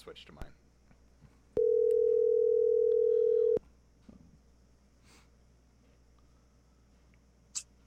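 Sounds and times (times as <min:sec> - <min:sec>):
speech: 0:00.0 - 0:00.6
phone ringback tone over a phone line: 0:01.6 - 0:03.6.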